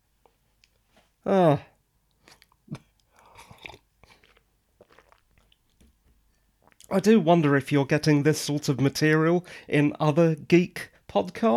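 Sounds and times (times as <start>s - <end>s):
speech: 1.2s - 1.7s, 6.9s - 11.5s
swallow: 2.2s - 6.0s
person sipping hot green tea: 3.1s - 5.6s.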